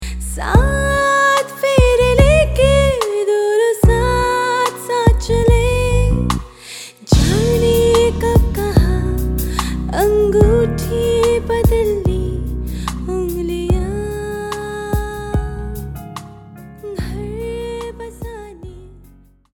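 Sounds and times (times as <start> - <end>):
woman singing a Hindi wedding wishing song: 0.2 - 16.0, 16.8 - 19.0.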